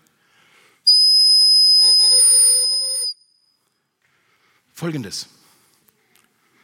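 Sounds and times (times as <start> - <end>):
shrill whistle blast: 0.9 - 3.5
speech: 4.8 - 5.4.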